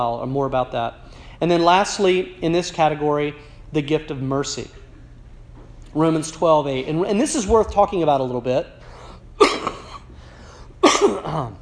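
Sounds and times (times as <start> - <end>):
speech: 0.0 - 4.8, 6.0 - 8.8, 11.0 - 11.5
harsh coughs: 9.4 - 10.2, 10.8 - 11.5.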